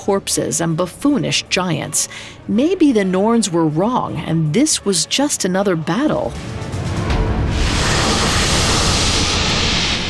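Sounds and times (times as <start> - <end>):
speech: 0.1 - 6.9
loud sustained hiss: 7.4 - 10.0.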